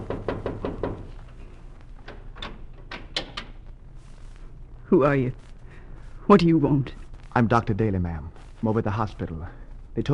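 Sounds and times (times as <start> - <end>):
knocking on a door: 0.0 - 1.2
speech: 4.9 - 5.5, 6.3 - 10.1.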